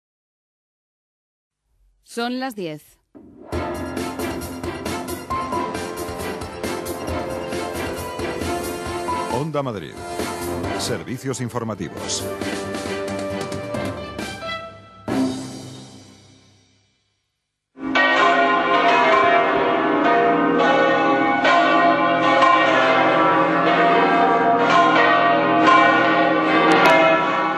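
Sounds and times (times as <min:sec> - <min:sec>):
speech: 0:02.0 - 0:03.6, 0:09.4 - 0:13.0
church bells pealing: 0:03.7 - 0:10.8, 0:17.8 - 0:27.5.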